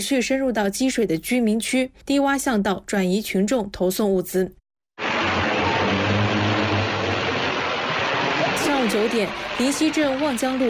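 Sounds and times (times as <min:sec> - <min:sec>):
speech: 0:00.0 - 0:04.6, 0:08.9 - 0:10.6
delivery drone propellers buzzing in flight: 0:05.0 - 0:08.6.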